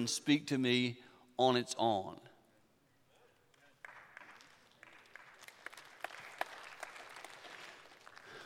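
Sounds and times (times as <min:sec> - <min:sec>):
speech: 0:00.0 - 0:02.3
thin scattered applause from a small audience: 0:03.5 - 0:08.4.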